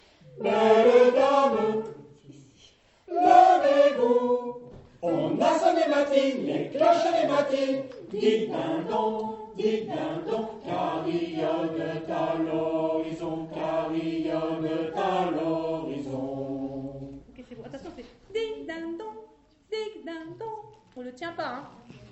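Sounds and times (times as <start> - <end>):
tenors singing: 0.0 - 17.3
sopranos singing: 0.0 - 17.4, 18.4 - 20.8.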